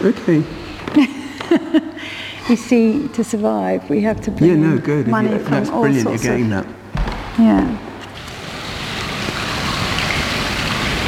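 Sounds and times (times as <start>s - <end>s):
speech: 0.0s - 1.1s, 2.5s - 6.8s, 7.4s - 7.8s
laughter: 1.0s - 2.1s
steady rain: 8.0s - 11.0s.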